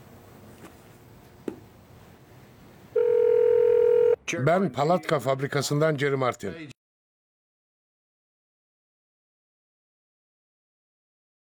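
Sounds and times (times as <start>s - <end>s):
steady telephone dial tone: 3.0s - 4.2s
speech: 4.3s - 6.8s.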